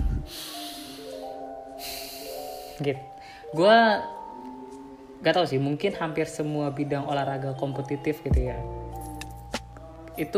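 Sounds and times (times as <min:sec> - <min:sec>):
deep breath drawn in with an airy hiss: 0:00.0 - 0:03.5
soft steady tone: 0:00.0 - 0:10.3
speech: 0:02.8 - 0:04.5, 0:05.2 - 0:08.8, 0:10.2 - 0:10.3.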